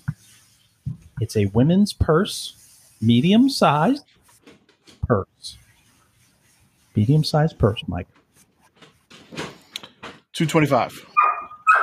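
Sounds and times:
speech: 1.2 - 4.1, 5.1 - 5.6, 7.0 - 8.2, 10.4 - 11.1
dog barking with high yelping notes: 11.2 - 11.8.

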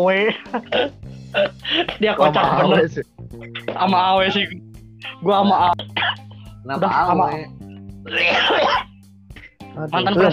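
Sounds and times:
speech: 0.0 - 8.9, 9.8 - 10.3
laughter: 0.1 - 4.5, 8.2 - 8.8
person coughing: 0.5 - 2.0, 5.9 - 6.3, 8.1 - 8.9.

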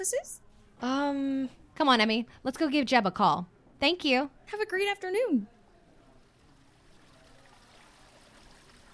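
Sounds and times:
speech: 0.0 - 5.6
trickling water from an indoor waterfall in an office: 6.2 - 8.9.

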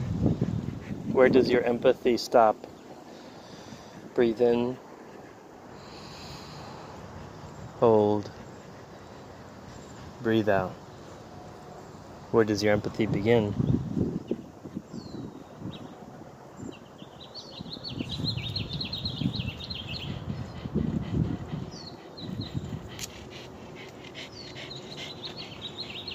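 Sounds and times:
steady rumble of wind: 0.0 - 2.1, 12.8 - 16.8, 17.6 - 23.4
birds chirping and trilling outdoors: 0.2 - 26.1
speech: 1.2 - 2.7, 4.2 - 4.8, 7.8 - 8.4, 10.2 - 10.8, 12.3 - 13.8.

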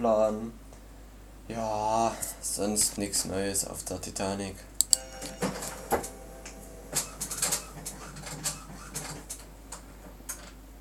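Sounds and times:
speech: 0.0 - 0.6, 1.5 - 6.1
printer powering up with mechanical clicks and ticks: 4.9 - 10.5.

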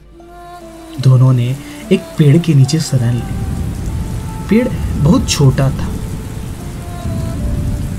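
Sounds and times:
heavy rain: 0.0 - 7.9
speech: 1.0 - 3.6, 4.5 - 6.0
low rumble: 3.1 - 7.9.

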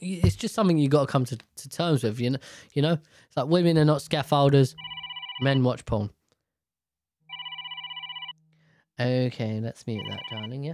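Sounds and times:
speech: 0.0 - 6.2, 9.0 - 10.7
mobile phone ringing with electronic trill: 4.8 - 5.6, 7.3 - 8.4, 10.0 - 10.6.

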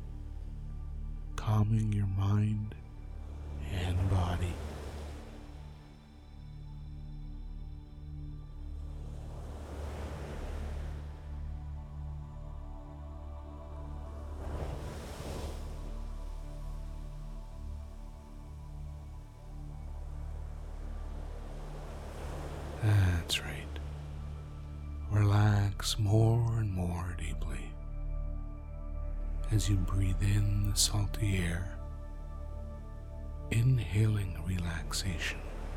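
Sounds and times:
low rumble of surf: 0.0 - 27.8, 28.5 - 35.7
gentle ocean waves washing onto a beach: 1.4 - 7.8, 8.5 - 27.7, 29.4 - 35.7
speech: 1.5 - 2.8, 3.6 - 4.7, 29.6 - 31.8, 33.6 - 35.5.

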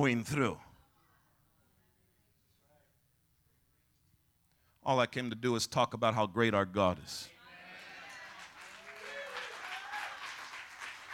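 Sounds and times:
speech: 0.0 - 0.7, 4.8 - 7.3
polite, subdued audience applause: 7.5 - 11.1.

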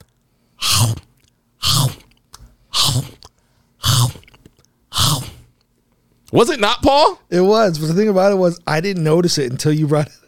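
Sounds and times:
voice mimicking loud open-mouthed chewing of popcorn: 0.6 - 5.6
speech: 6.3 - 10.2.

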